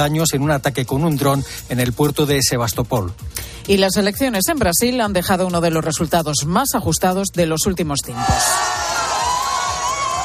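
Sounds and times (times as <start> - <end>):
speech: 0.0 - 8.9
crowd cheering in the streets of Brazil after an election victory: 8.2 - 10.2.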